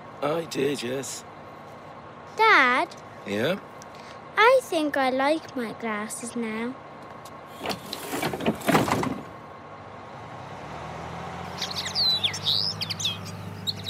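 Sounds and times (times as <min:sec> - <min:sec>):
speech: 0:00.2 - 0:01.3, 0:02.4 - 0:03.7, 0:04.4 - 0:06.8, 0:07.6 - 0:08.4
newly hatched chicks chirping in a nest: 0:11.5 - 0:13.8.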